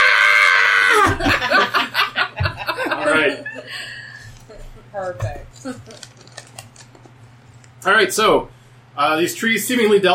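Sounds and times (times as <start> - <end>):
person screaming: 0.0 - 1.4
laughter: 0.7 - 4.2
speech: 7.8 - 10.1.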